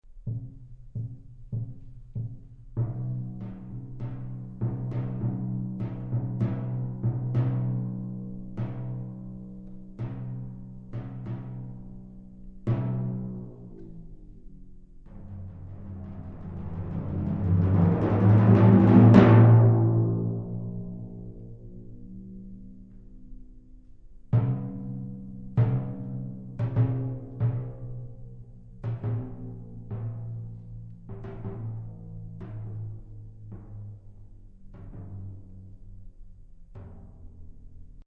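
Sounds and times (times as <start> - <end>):
timpani: 0.0 - 23.1, 24.2 - 38.0.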